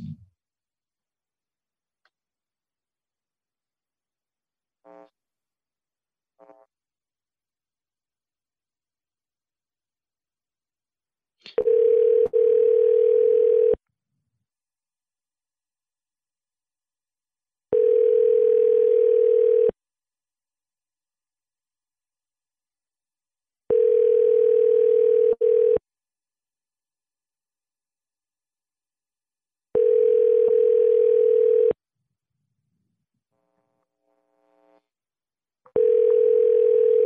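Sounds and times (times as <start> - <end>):
telephone dialing tones on an outgoing call from a computer dialing window: 11.6 - 13.8, 17.8 - 19.7, 23.7 - 25.8, 29.8 - 31.8, 35.8 - 37.0.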